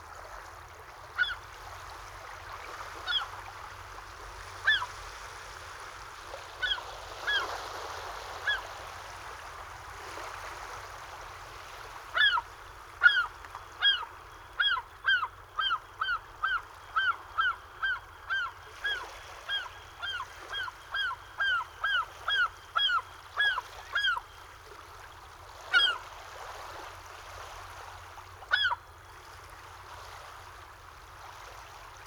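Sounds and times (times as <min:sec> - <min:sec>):
ocean waves lapping on shore: 0:00.0 - 0:32.0
gulls circling: 0:14.6 - 0:24.2.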